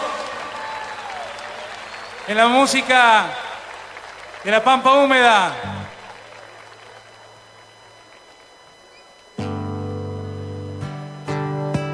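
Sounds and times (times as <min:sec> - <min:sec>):
faint whistles and cheers: 0:00.0 - 0:04.6, 0:05.7 - 0:09.4
crowd applauding in a hall: 0:00.0 - 0:09.1
speech: 0:02.3 - 0:03.4, 0:04.4 - 0:05.7.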